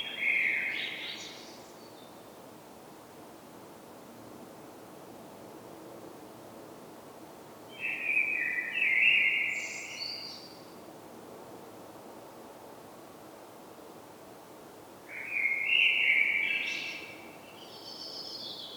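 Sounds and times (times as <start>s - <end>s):
common blackbird Turdus merula song: 0.0s - 2.1s, 7.7s - 10.6s, 15.1s - 18.7s.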